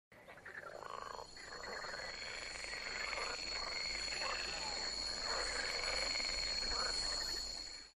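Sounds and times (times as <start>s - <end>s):
jurassic jungle ambience: 0.2s - 7.9s.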